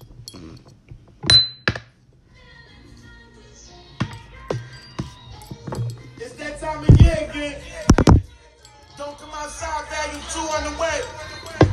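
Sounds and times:
glasses clinking together in a toast: 0.0s - 1.8s, 4.0s - 7.2s, 8.0s - 11.7s
speech: 6.9s - 7.8s, 9.2s - 11.3s.

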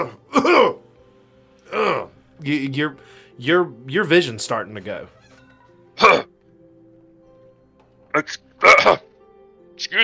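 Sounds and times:
person coughing as if choking on smoke: 0.0s - 0.8s, 6.0s - 6.3s, 8.2s - 9.1s
speech: 2.4s - 5.3s, 8.2s - 9.1s, 9.8s - 10.0s.

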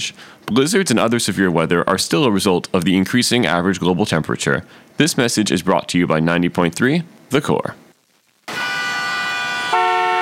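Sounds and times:
speech: 0.0s - 7.8s
car horn honking in heavy traffic: 8.5s - 10.2s.

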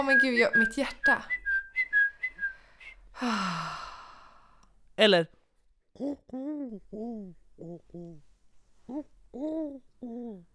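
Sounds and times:
speech: 0.0s - 1.4s, 3.2s - 3.8s, 5.0s - 5.4s, 6.0s - 8.3s, 8.9s - 10.5s
person whistling short high chirps in imitation of a bird: 0.0s - 3.5s
long breathy exhale: 2.5s - 4.6s.

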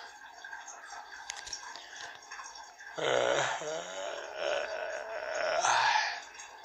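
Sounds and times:
man groaning with strain while pushing hard defecating: 3.0s - 6.2s.

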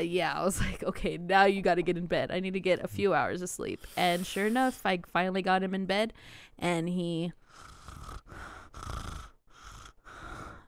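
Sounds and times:
speech: 0.0s - 7.7s
person imitating snoring with rough breathy snorts: 7.4s - 10.6s.

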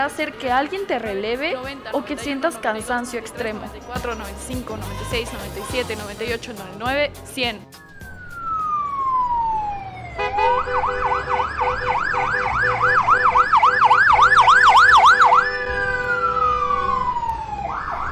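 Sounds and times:
speech: 0.0s - 7.8s
ambulance siren wailing and yelping: 7.8s - 18.1s.

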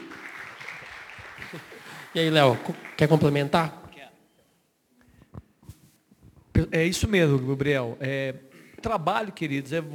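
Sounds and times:
scattered clapping from a small group: 0.0s - 3.6s
speech: 1.5s - 3.8s, 6.7s - 9.9s.

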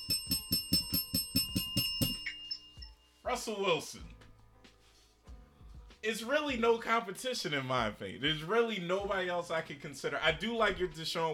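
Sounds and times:
bell ringing when struck: 0.0s - 3.2s
speech: 3.3s - 4.2s, 6.0s - 11.3s.

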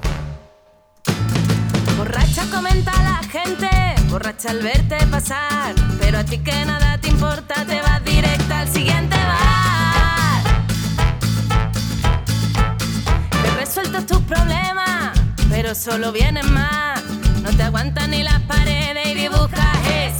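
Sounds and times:
pop-rock band with steady drums and bass: 1.1s - 6.4s, 8.1s - 14.5s, 19.7s - 20.1s
speech: 2.0s - 9.6s, 13.8s - 15.0s, 15.6s - 20.1s
woman singing lead in Spanish: 2.0s - 10.7s, 13.1s - 20.1s.

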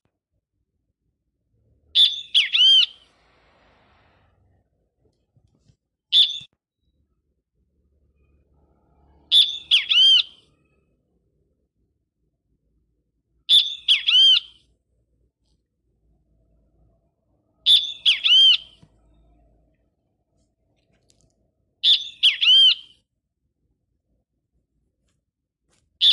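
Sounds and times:
bird singing a bright phrase of looping whistled notes: 2.0s - 3.1s, 6.1s - 6.5s, 9.3s - 10.5s, 13.5s - 14.6s, 17.6s - 19.2s, 21.8s - 23.0s.

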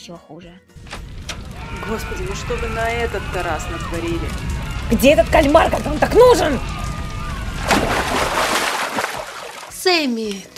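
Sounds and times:
speech: 0.0s - 0.9s, 1.7s - 6.8s, 9.8s - 10.5s
bucket of water from under a bar counter thrown out and splashing: 7.6s - 9.8s.

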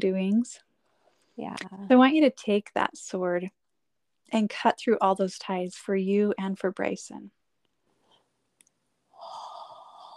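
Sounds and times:
speech: 0.0s - 0.7s, 1.4s - 3.6s, 4.3s - 7.4s
long breathy yawn: 9.2s - 10.1s.

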